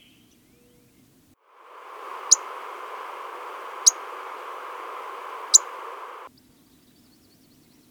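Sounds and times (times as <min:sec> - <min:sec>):
steady hiss: 0:01.4 - 0:06.3
pyrrhuloxia giving loud downslurred whistled notes: 0:01.7 - 0:06.3.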